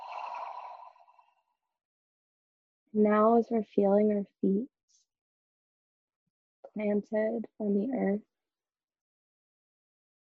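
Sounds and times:
long breathy exhale through the mouth during a guided breathing exercise: 0:00.0 - 0:01.2
speech: 0:02.9 - 0:04.8, 0:06.8 - 0:08.3.

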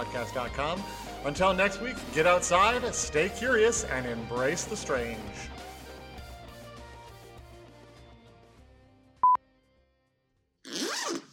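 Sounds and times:
speech: 0:00.0 - 0:05.6
music: 0:00.0 - 0:09.9
vest zipper being unzipped to be taken off: 0:10.6 - 0:11.3.

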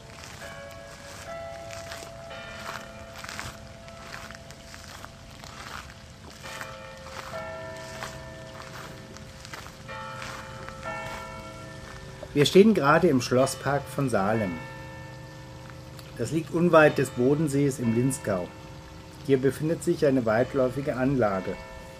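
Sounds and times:
rustling: 0:00.0 - 0:12.8
faint footsteps: 0:00.0 - 0:16.2
church bells ringing from a bell tower in a palace park: 0:00.0 - 0:21.9
speech: 0:12.4 - 0:14.7, 0:16.2 - 0:18.6, 0:19.2 - 0:21.7.

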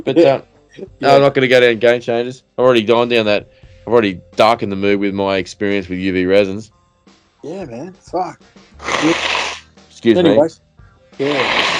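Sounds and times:
speech: 0:00.0 - 0:06.8, 0:07.4 - 0:09.4, 0:10.0 - 0:10.6, 0:11.2 - 0:11.7
faint sniff: 0:08.7 - 0:09.7
person blowing nose: 0:08.8 - 0:09.8, 0:11.2 - 0:11.7.

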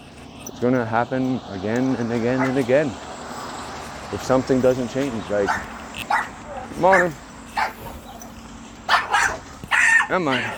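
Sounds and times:
speech: 0:00.6 - 0:03.1, 0:04.1 - 0:06.1, 0:06.7 - 0:07.2, 0:10.1 - 0:10.5
neighbor's dog barking: 0:02.4 - 0:02.6, 0:05.5 - 0:10.5.

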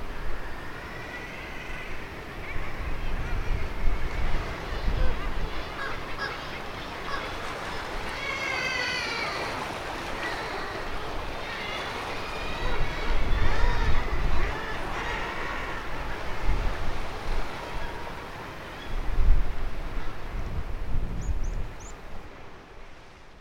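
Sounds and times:
roar of surf: 0:00.0 - 0:21.1
seabird cries echoing off rocks below sea cliffs: 0:00.2 - 0:19.0
wind on an exposed hilltop buffeting the microphone: 0:01.9 - 0:08.2, 0:10.8 - 0:23.2.

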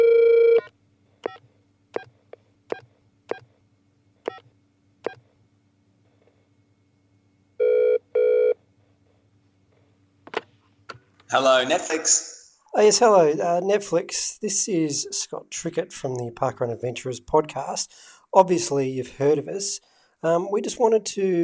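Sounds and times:
telephone ringing: 0:00.0 - 0:00.7, 0:07.6 - 0:08.6
speech: 0:11.3 - 0:21.4.

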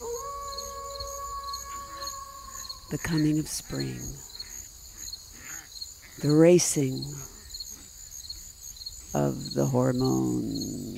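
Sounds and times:
wolf howling: 0:00.0 - 0:03.0, 0:10.1 - 0:10.9
speech: 0:02.9 - 0:04.3, 0:06.2 - 0:07.4, 0:09.1 - 0:10.9.

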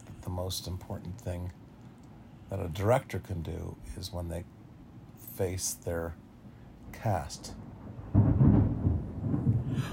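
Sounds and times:
faint hiss of rain or wind: 0:00.0 - 0:09.9
speech: 0:00.3 - 0:01.6, 0:02.5 - 0:04.6, 0:05.4 - 0:06.2, 0:06.9 - 0:07.6
deep rumbling roll of thunder: 0:06.9 - 0:09.9.

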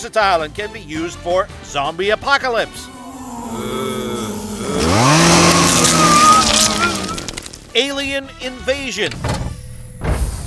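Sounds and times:
speech: 0:00.0 - 0:03.8, 0:07.7 - 0:09.4
chainsaw engine revving: 0:02.7 - 0:07.9.

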